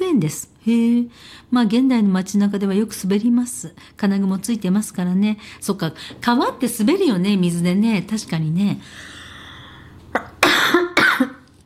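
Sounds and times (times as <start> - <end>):
speech: 0.2 - 9.2
person coughing after choking on water: 10.1 - 11.4.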